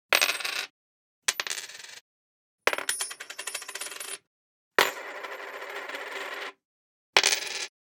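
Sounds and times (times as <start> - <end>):
single coin dropping and spinning on a wood table: 0.2 - 0.7, 1.3 - 2.0, 2.7 - 4.2, 4.8 - 6.6, 7.2 - 7.7.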